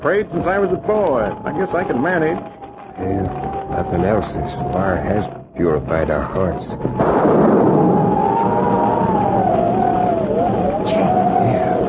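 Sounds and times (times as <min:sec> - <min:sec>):
speech: 0:00.0 - 0:07.9
faint wavering whistle: 0:00.0 - 0:11.8
thunder of an approaching storm: 0:00.0 - 0:11.8.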